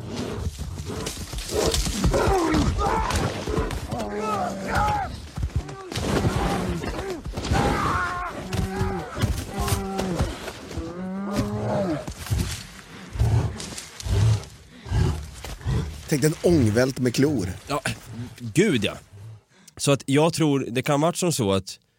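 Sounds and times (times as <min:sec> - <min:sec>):
bear roaring and growling aggressively in an attack: 0:00.0 - 0:16.5
speech: 0:16.1 - 0:19.1, 0:19.8 - 0:21.9.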